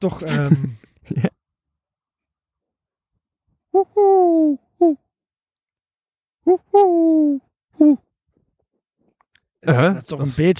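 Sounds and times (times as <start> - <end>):
speech: 0.0 - 1.3, 3.8 - 5.0, 6.5 - 8.1, 9.6 - 10.5
laughter: 0.1 - 1.4
person imitating Eurasian collared dove cooing: 3.7 - 5.1, 6.4 - 8.0.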